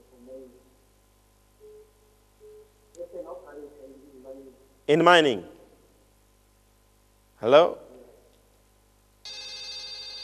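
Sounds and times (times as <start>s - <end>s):
speech: 4.9s - 5.5s, 7.4s - 7.8s
steady electronic tone of a phone call line cutting off: 9.3s - 10.2s.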